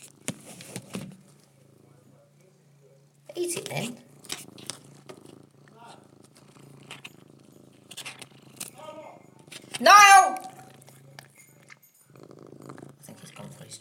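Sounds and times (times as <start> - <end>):
cat purring: 0.0 - 13.7
speech: 3.4 - 4.1
loud sharp cat meow: 9.8 - 10.7.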